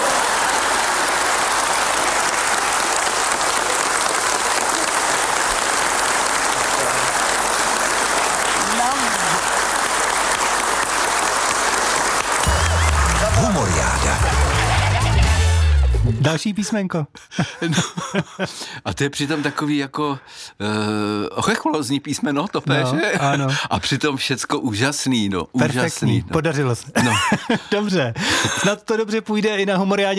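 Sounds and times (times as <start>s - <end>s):
large audience applause: 0.0s - 16.0s
laughter: 12.4s - 15.7s, 17.3s - 19.7s, 22.7s - 23.6s, 27.0s - 28.8s
speech: 16.3s - 30.1s.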